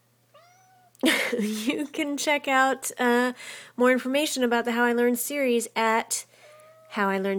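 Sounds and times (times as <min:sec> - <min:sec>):
cat meowing: 0:00.3 - 0:00.9, 0:06.5 - 0:07.0
speech: 0:01.4 - 0:06.4, 0:06.9 - 0:07.3.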